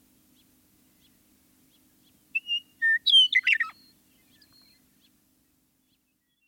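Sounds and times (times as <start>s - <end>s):
Western meadowlark singing whistles and bubbling warbled notes: 0.4s - 5.2s.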